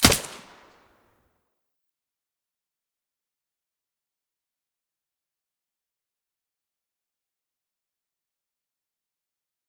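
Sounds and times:
silenced AUG rifle gunshot: 0.0 - 0.8.

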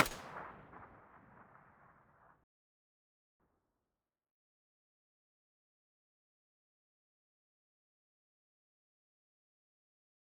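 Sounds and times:
distant MP5 muzzle gunshot: 0.0 - 2.1.

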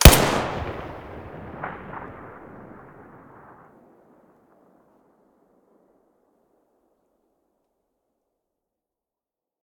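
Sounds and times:
TT-33 pistol muzzle shot: 0.0 - 2.2.

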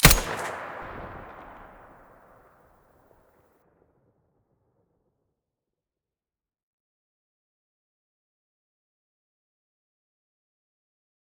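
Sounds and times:
weapon muzzle blast in stereo: 0.0 - 1.8.

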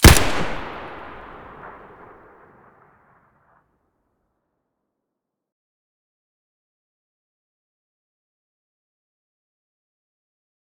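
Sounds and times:
SKS rifle muzzle gunshot: 0.0 - 2.8.

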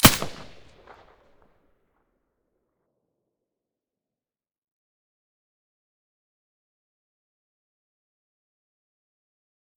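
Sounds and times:
silenced gunshot: 0.0 - 1.0.

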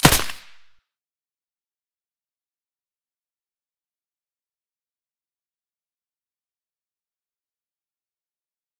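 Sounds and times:
SA58 rifle shots with silencer: 0.0 - 0.7.

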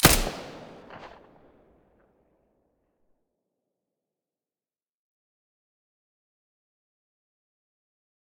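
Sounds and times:
P90 gun shots with silencer: 0.0 - 1.8.

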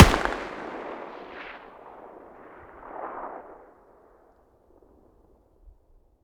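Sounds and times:
distant stationary machine gun muzzle blast: 0.0 - 1.6.

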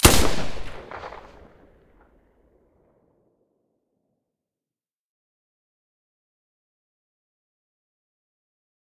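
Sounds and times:
silenced Galil rifle shots: 0.0 - 1.6.

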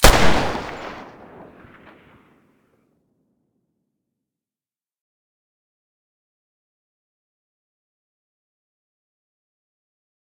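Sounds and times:
Desert Eagle pistol gunshot in mono: 0.0 - 2.2.

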